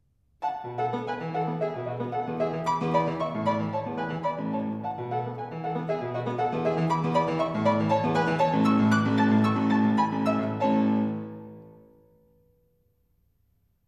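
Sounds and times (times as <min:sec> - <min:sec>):
solo fortepiano bagatelles: 0:00.4 - 0:12.7.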